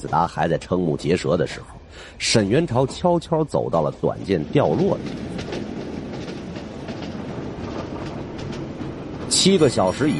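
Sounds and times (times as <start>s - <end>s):
speech: 0.0s - 5.5s, 9.3s - 10.1s
moving train rumbling along the rails: 0.0s - 10.1s
train wheels clicking over track joints: 2.7s - 10.1s.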